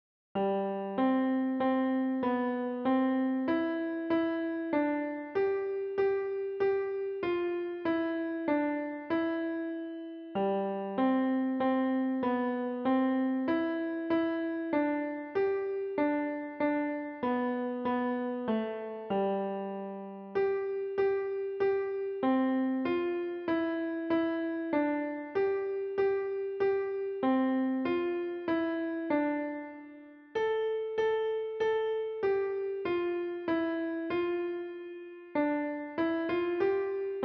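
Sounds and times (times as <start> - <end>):
piano playing a Christmas carol: 0.4 - 37.2.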